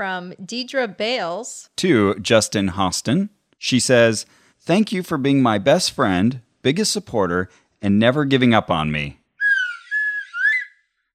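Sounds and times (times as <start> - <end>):
speech: 0.0 - 9.2
slide whistle toots: 9.4 - 10.8.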